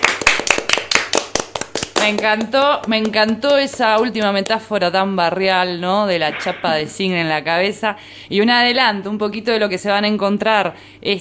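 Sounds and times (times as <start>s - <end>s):
hands clapping in applause: 0.0s - 4.6s
speech: 2.0s - 11.1s.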